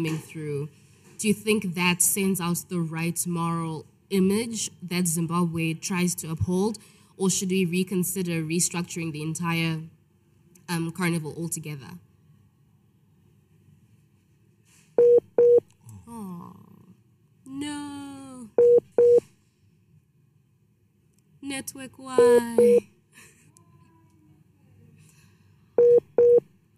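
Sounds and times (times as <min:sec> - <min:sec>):
speech: 0:00.0 - 0:10.0, 0:10.7 - 0:12.1, 0:21.5 - 0:22.9
dropped phone call line tone beeps: 0:15.0 - 0:15.6, 0:18.6 - 0:19.2, 0:22.2 - 0:22.8, 0:25.8 - 0:26.4.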